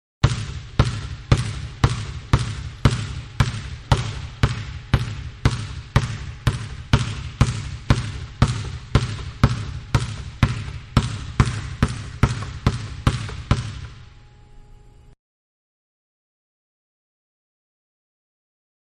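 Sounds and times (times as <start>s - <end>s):
basketball dribbling indoors: 0.2s - 14.1s.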